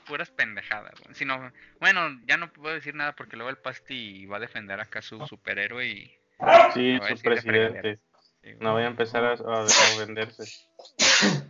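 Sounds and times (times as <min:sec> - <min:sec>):
speech: 0:00.1 - 0:11.4
sharp sneeze: 0:09.6 - 0:10.1, 0:10.9 - 0:11.4.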